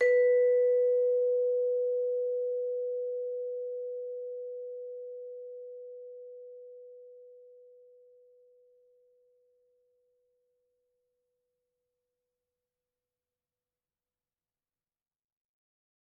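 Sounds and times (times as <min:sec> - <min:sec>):
vibraphone played with soft mallets: 0:00.0 - 0:08.7.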